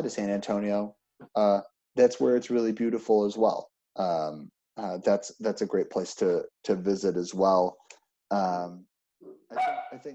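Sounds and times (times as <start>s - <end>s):
speech: 0.0s - 8.9s, 9.5s - 10.1s
dog barking with yippy barks: 9.6s - 10.1s.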